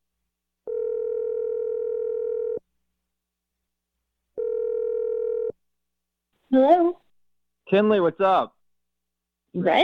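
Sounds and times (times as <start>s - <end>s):
long flat telephone tones: 0.7s - 2.7s, 4.4s - 5.6s
speech: 7.7s - 8.6s, 9.5s - 9.8s.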